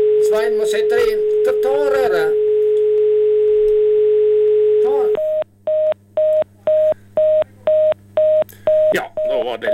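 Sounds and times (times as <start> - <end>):
speech: 0.3 - 2.4
telephone line tone: 1.3 - 9.7
telephone busy signal with short evenly spaced beeps: 2.5 - 9.7.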